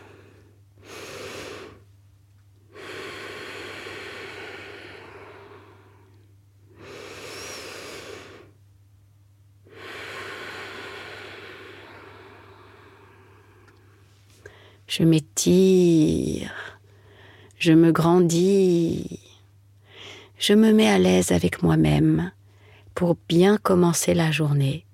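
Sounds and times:
deep slow breathing by someone seated upright and cross-legged: 0.0s - 1.9s, 2.7s - 8.6s, 9.6s - 14.8s
speech: 14.9s - 16.7s, 17.6s - 19.2s, 20.4s - 22.4s, 23.0s - 24.9s.

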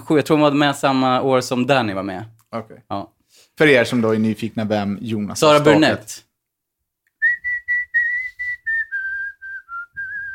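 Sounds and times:
speech: 0.1s - 6.3s
person whistling a short melody: 7.2s - 10.3s.

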